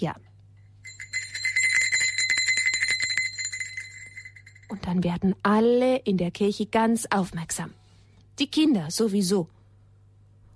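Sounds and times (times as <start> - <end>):
speech: 0.0 - 0.2, 4.8 - 7.8, 8.4 - 9.6
low steady hum: 0.0 - 10.5
small altar bells ringing in a church before the consecration: 0.8 - 4.8.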